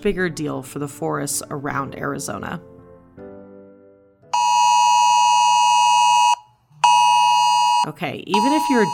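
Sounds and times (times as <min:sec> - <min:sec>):
speech: 0:00.0 - 0:02.7, 0:07.8 - 0:08.9
mobile phone emergency weather alert buzzing tone: 0:04.4 - 0:08.9.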